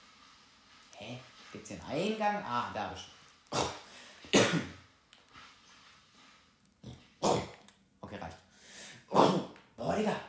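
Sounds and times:
speech: 1.1s - 3.8s
harsh rough coughs from one person: 3.5s - 4.8s, 7.2s - 7.6s, 9.1s - 9.6s
quiet breathing: 3.8s - 4.3s, 8.4s - 9.1s.

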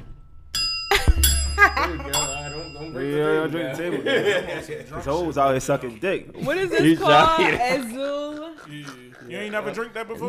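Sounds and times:
small metallic bell struck and ringing: 0.5s - 3.7s
people talking and laughing: 0.9s - 10.2s
speech: 2.8s - 10.2s.

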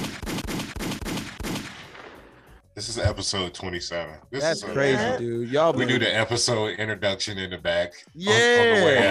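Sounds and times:
gunshot sound effects: 0.0s - 2.6s
speech: 2.9s - 9.0s
laughter: 4.5s - 6.7s, 8.2s - 9.0s.

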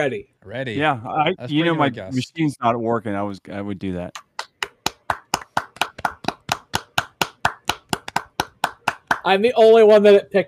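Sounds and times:
speech: 0.0s - 4.3s, 9.2s - 10.4s
single person applauding with hand claps: 4.1s - 9.4s.

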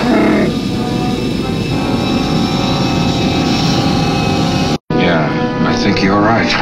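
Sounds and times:
dense loud rumble: 0.0s - 4.8s
spaceship engine on full reverse straining with a whining hum: 0.0s - 4.8s
speech: 6.1s - 6.6s.

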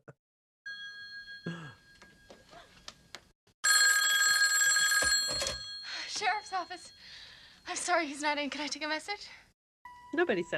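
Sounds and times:
telephone bell ringing: 0.7s - 2.7s, 3.6s - 7.8s
speech: 6.5s - 9.4s, 10.1s - 10.5s.

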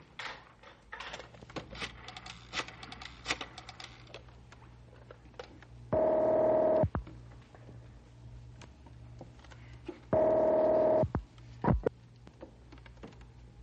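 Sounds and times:
telephone ringing: 6.0s - 6.9s, 10.2s - 11.1s.

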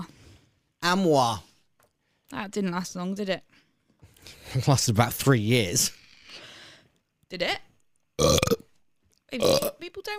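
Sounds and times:
speech: 0.9s - 1.5s, 2.3s - 3.6s, 4.5s - 6.5s, 7.3s - 8.4s, 9.3s - 10.1s
loud burps with guttural sputters: 8.2s - 8.7s, 9.4s - 9.8s.

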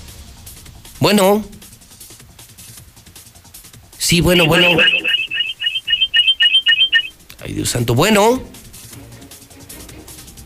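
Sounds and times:
speech: 1.0s - 1.6s, 4.1s - 5.0s, 7.5s - 8.6s
telephone ringing with bright electronic trills: 4.3s - 7.1s.

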